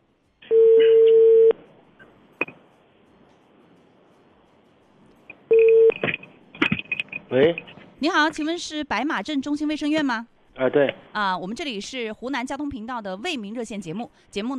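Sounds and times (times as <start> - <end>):
telephone line tones while a call is placed to a township health centre: 0.5 - 1.6, 5.5 - 6.0
speech: 7.3 - 14.5.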